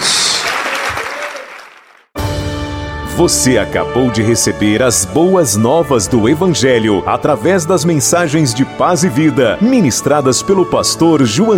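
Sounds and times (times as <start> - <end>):
church congregation applauding: 0.0 - 2.2
speech: 3.2 - 11.5.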